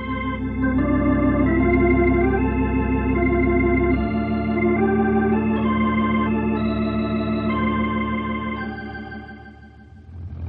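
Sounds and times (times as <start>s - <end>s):
airplane engine running on the ground: 0.0s - 10.2s.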